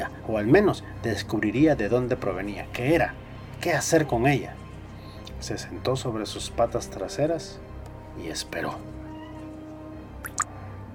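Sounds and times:
speech: 0.3s - 4.6s, 5.4s - 7.6s, 8.2s - 9.0s
cat meowing: 9.0s - 9.6s.

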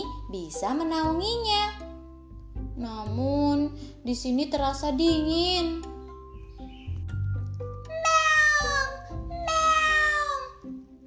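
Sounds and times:
speech: 0.3s - 1.8s, 2.8s - 5.9s
cat meowing, calling to other cats: 7.9s - 10.6s.

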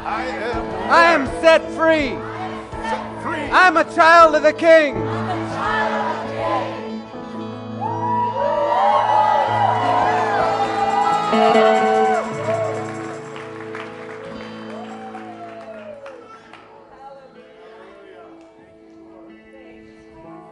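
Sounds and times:
speech: 0.1s - 2.3s, 2.9s - 5.7s, 11.3s - 11.9s
audience at a church service cheering and whooping: 7.8s - 16.6s
hand clapping: 11.7s - 16.7s.

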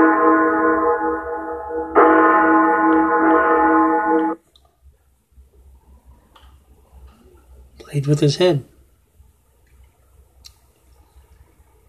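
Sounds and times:
bells ringing: 0.0s - 4.4s
speech: 8.0s - 8.7s.

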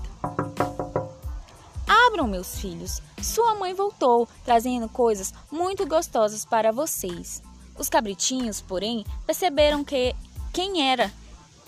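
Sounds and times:
sharp knocking on a door: 0.0s - 1.3s
speech: 2.2s - 11.2s.

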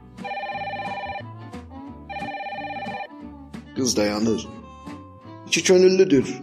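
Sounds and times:
telephone bell ringing: 0.2s - 1.3s, 2.1s - 3.1s
speech: 3.8s - 4.6s, 5.5s - 6.4s.

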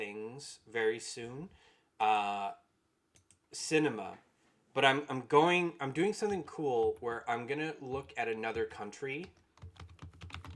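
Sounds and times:
speech: 0.4s - 2.6s, 3.5s - 9.9s
quick computer keyboard typing: 7.9s - 10.5s.

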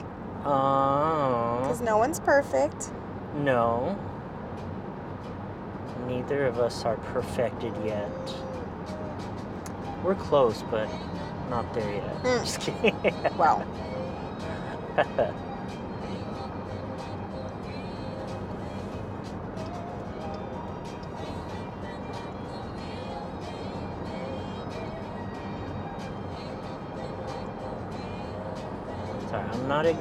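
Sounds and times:
car cruising at highway speed: 0.0s - 29.9s
speech: 0.4s - 1.1s, 1.7s - 4.1s, 6.1s - 8.5s, 10.0s - 13.9s, 15.0s - 15.4s
laughter: 12.3s - 13.6s, 14.6s - 15.3s.

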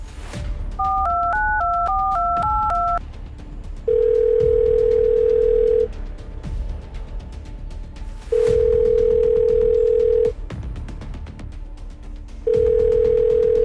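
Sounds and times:
steady telephone calling tone: 0.8s - 3.0s, 3.9s - 5.9s, 8.4s - 10.3s, 12.5s - 13.6s
telephone keypad tones beeping as a number is dialed: 0.8s - 3.0s, 3.9s - 5.9s, 8.7s - 10.3s.

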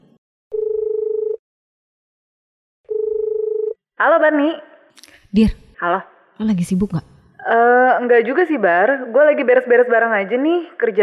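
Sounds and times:
outgoing phone call ringback tone: 0.5s - 1.4s, 2.9s - 3.8s
speech: 4.0s - 11.0s.

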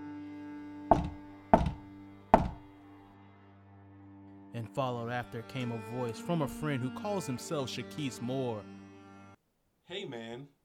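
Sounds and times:
solid knocks on a door: 0.9s - 2.7s
speech: 4.6s - 8.8s, 10.0s - 10.6s.

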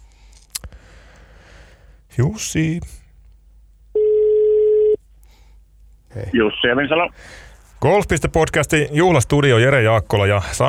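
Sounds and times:
speech: 2.2s - 3.0s, 6.2s - 10.6s
telephone ringing tone while a studio phone number is called: 4.0s - 5.0s.

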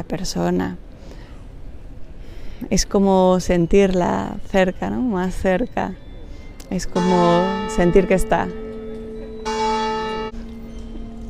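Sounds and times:
speech: 0.0s - 0.9s, 2.6s - 6.0s, 6.7s - 8.6s
church bell ringing: 6.8s - 11.2s.

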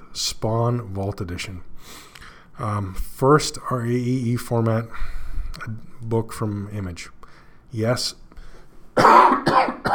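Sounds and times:
speech: 0.2s - 8.2s, 9.0s - 9.9s
harsh coughs: 9.0s - 9.9s.

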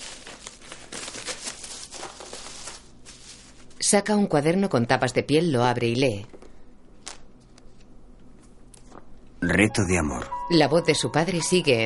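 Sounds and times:
paper package crinkling as it is opened: 0.0s - 3.8s
speech: 3.9s - 6.4s, 9.5s - 11.8s.

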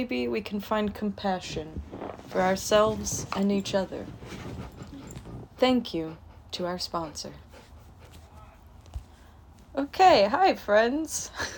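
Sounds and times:
speech: 0.0s - 4.5s, 5.6s - 7.4s, 9.8s - 11.5s
dog whimpering and whining: 3.6s - 6.0s.

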